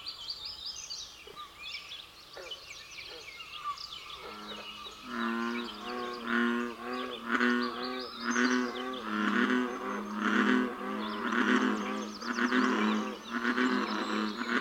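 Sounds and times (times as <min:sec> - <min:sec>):
bird calls: 0:00.0 - 0:14.5
American bullfrog giving deep resonant croaks: 0:04.2 - 0:14.5.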